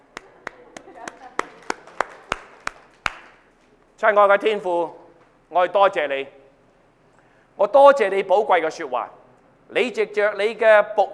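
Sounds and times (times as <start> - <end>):
sharp hand claps: 0.0 - 3.5
speech: 4.0 - 6.4, 7.6 - 11.1.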